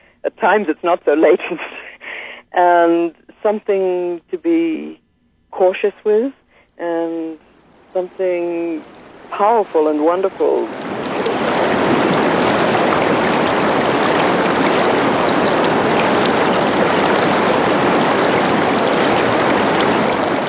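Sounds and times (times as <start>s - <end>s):
speech: 0.2s - 1.8s, 2.6s - 5.0s, 5.6s - 10.8s
mountain river rushing in New Zealand: 7.7s - 20.4s.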